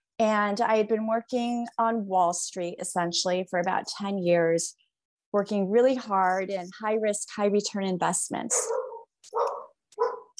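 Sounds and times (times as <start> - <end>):
speech: 0.2 - 9.4
dog barking: 8.5 - 10.3.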